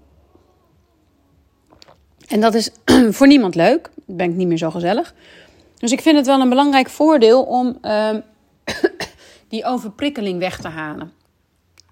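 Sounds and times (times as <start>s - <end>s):
person sipping a drink: 1.6s - 2.3s
soft wet mouth sounds: 1.6s - 2.3s
speech: 2.3s - 8.8s, 9.5s - 11.2s.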